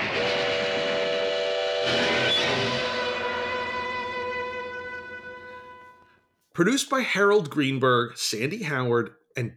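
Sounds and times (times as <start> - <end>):
steam train whistle blowing a multi-tone chord: 0.0 - 6.2
speech: 6.6 - 9.5.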